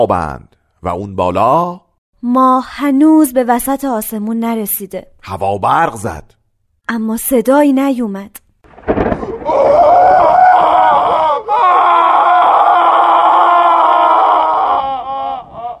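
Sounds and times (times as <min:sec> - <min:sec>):
speech: 0:00.0 - 0:09.0
girl screaming loudly: 0:09.5 - 0:15.7.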